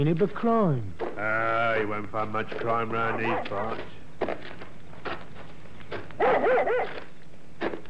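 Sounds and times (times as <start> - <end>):
speech: 0.0 - 4.0, 6.2 - 7.0
dog barking excitedly: 3.1 - 3.8, 6.2 - 7.1.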